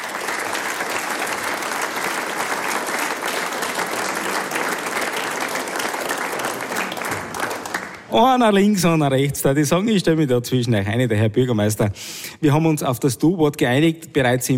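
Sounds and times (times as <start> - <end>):
audience applause: 0.0 - 8.2
speech: 8.1 - 14.5.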